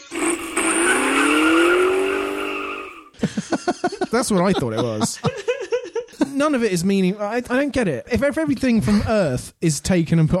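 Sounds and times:
Lamborghini Sardic supercar driving by with engine roaring: 0.0 - 3.1
speech: 3.2 - 5.5, 6.4 - 10.3
laughter: 3.2 - 6.4.

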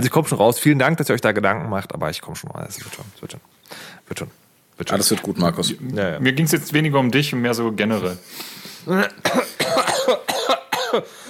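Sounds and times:
speech: 0.0 - 11.2
man having a harsh raspy coughing fit: 8.9 - 11.2.

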